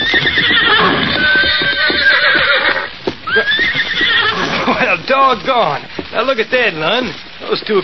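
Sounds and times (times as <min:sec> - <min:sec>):
horse whinnying loudly with high wavering neighs: 0:00.0 - 0:04.8
clatter of horse hooves approaching: 0:00.0 - 0:07.8
speech: 0:05.2 - 0:07.8.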